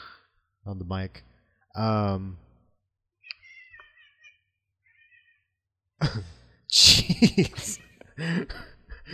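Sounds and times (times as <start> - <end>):
speech: 0.7 - 2.4, 6.0 - 9.1
cat meowing: 3.2 - 4.2
laughter: 6.0 - 9.1.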